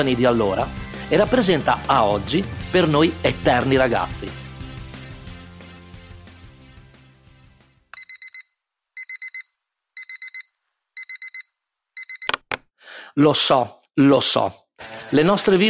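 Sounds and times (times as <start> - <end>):
speech: 0.0 - 4.4, 13.2 - 15.6
music: 0.0 - 7.9, 14.8 - 15.6
electronic alarm clock ringing in beeping trills: 8.0 - 12.4.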